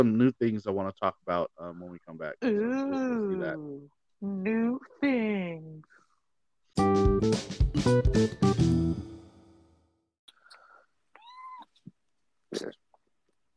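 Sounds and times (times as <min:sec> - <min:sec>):
speech: 0:00.0 - 0:05.9, 0:06.8 - 0:09.1
loud music: 0:06.8 - 0:09.1
cat screaming and meowing: 0:11.2 - 0:11.8.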